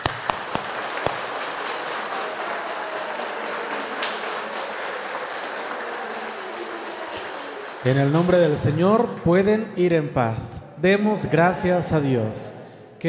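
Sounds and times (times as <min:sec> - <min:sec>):
church audience applause at the end of a service: 0:00.0 - 0:09.0
speech: 0:07.8 - 0:13.0.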